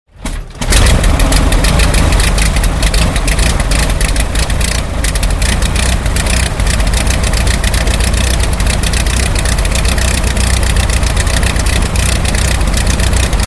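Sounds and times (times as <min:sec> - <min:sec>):
SPAD aircraft engine starting: 0:00.2 - 0:13.4.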